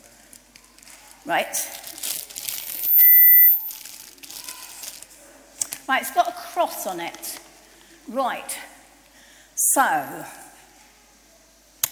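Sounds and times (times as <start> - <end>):
paper crinkling as drawn out of a bag: 0.0 - 2.9, 3.6 - 5.2
speech: 1.2 - 2.1, 5.9 - 7.4, 8.1 - 8.7, 9.8 - 10.4
electronic beep: 2.8 - 3.7.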